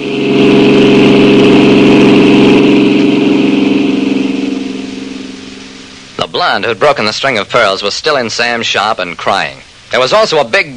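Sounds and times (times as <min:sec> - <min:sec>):
car engine running and pulling away: 0:00.0 - 0:06.3
speech: 0:06.5 - 0:10.7.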